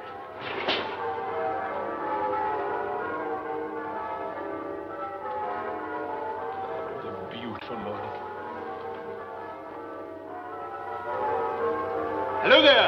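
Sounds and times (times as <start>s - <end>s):
church bells ringing: 0.0s - 12.8s
speech: 12.5s - 12.8s.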